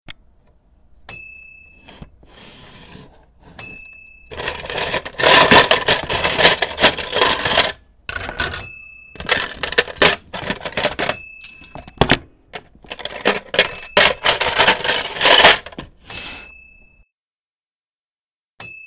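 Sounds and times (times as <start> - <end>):
kitchen drawer with utensils: 1.8 - 16.5.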